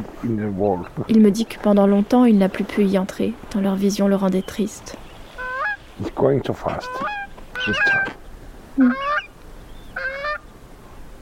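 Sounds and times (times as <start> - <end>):
speech: 0.2 - 5.0, 6.0 - 8.2, 8.8 - 9.2
wild geese honking during courtship: 5.3 - 5.8, 6.5 - 8.2, 8.8 - 10.5.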